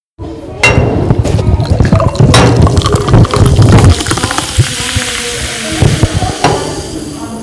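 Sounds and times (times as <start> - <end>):
liquid pouring: 1.2 - 7.1.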